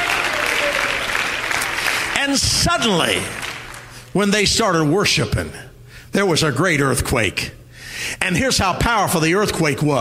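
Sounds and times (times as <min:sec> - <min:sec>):
audience clapping at a church worship service: 0:00.0 - 0:04.1
speech: 0:02.3 - 0:03.4, 0:04.2 - 0:10.0.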